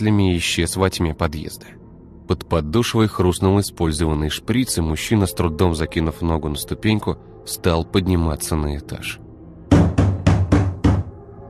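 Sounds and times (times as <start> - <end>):
speech: 0.0 - 9.2
large fist pounding on a shabby door: 9.7 - 11.1.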